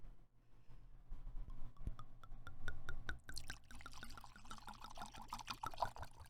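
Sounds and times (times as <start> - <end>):
wine pouring into a glass: 1.7 - 6.2.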